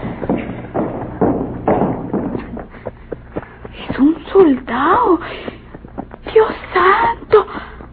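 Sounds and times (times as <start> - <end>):
horse hooves clip-clopping: 0.0 - 7.9
low rumbling background: 0.0 - 7.9
speech: 4.0 - 5.5.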